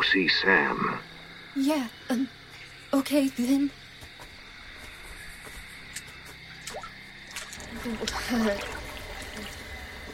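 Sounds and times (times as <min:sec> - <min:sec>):
speech: 0:00.1 - 0:03.8, 0:07.8 - 0:08.8
water sloshing and splashing as someone wades into a cold lake: 0:06.6 - 0:10.0.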